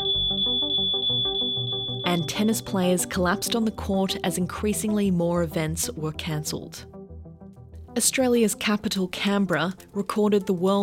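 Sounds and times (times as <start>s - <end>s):
high-pitched smoke alarm beeping: 0.0s - 4.0s
rhythmic music: 0.0s - 10.8s
speech: 2.1s - 6.9s, 8.0s - 10.8s.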